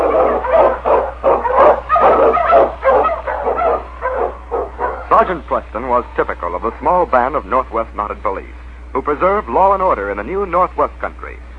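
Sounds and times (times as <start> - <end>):
excited sled dogs barking and yipping: 0.0 - 5.3
steady low hum: 0.0 - 11.5
speech: 5.4 - 11.5.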